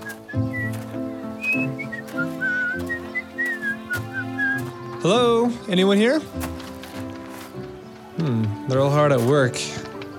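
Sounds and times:
man whistling a bright cheerful tune while walking: 0.0s - 0.8s, 1.4s - 4.6s
soft music: 0.0s - 10.1s
speech: 5.0s - 6.5s, 8.7s - 9.8s.

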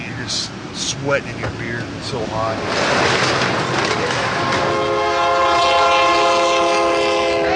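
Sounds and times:
train rumbling past an ice house bar in San Antonio Texas: 0.0s - 7.5s
speech: 1.0s - 4.5s
train cars clattering: 1.3s - 7.5s
train horn blaring in a multi-toned blast: 4.3s - 7.5s.

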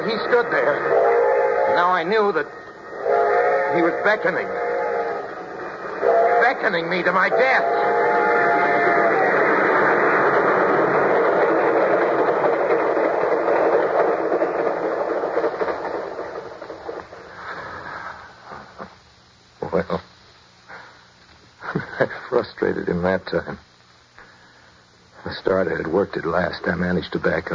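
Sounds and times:
train rumbling: 0.0s - 19.0s
speech: 0.1s - 2.7s, 3.7s - 4.7s, 6.6s - 8.1s, 22.8s - 23.7s, 25.4s - 27.5s
train whistle: 0.7s - 10.1s.

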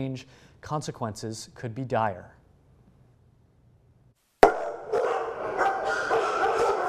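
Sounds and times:
speech: 0.0s - 2.4s
many dogs barking in an animal shelter: 4.4s - 6.8s.

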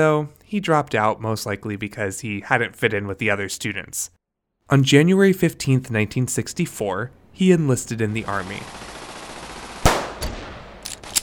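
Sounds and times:
speech: 0.0s - 9.0s
M14 rifle shots during shooting practice: 8.7s - 11.2s.

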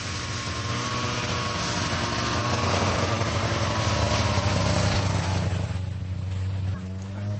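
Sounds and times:
mountain rescue snow scooter engine idling on a mountainside: 0.0s - 7.3s.

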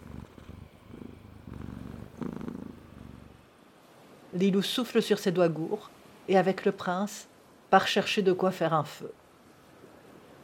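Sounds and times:
cat purring: 0.0s - 3.5s
speech: 4.4s - 9.2s.

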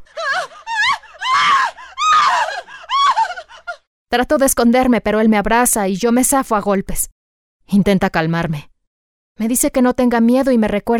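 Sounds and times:
woman screaming in fright: 0.0s - 3.9s
speech: 4.1s - 8.7s, 9.4s - 10.9s.

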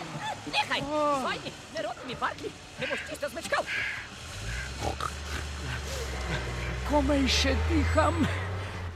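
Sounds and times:
speech: 0.7s - 4.2s, 6.9s - 8.5s
pig grunting and snorting: 4.4s - 6.8s.

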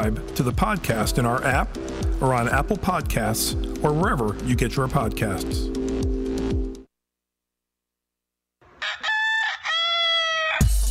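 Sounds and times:
speech: 0.0s - 5.8s
rooster crowing: 8.7s - 10.8s.

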